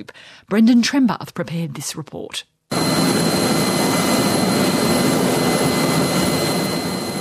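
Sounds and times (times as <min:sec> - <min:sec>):
speech: 0:00.0 - 0:02.5
military helicopter turbine engine roaring: 0:02.7 - 0:07.1.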